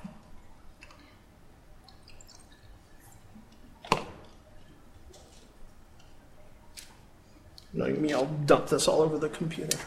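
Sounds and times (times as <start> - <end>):
sharp drip of water from rinsing a probe: 1.8 - 3.6
speech: 7.8 - 9.8.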